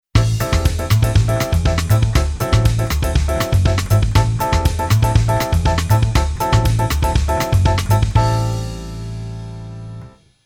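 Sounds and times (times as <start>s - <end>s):
piano bossa nova: 0.2s - 10.3s.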